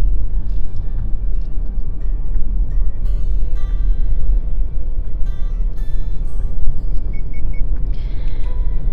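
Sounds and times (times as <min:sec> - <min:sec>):
car engine rumble inside a car on a narrow road through rice paddies: 0:00.0 - 0:08.9
road noise from a car on a narrow road through rice paddies: 0:00.0 - 0:08.9.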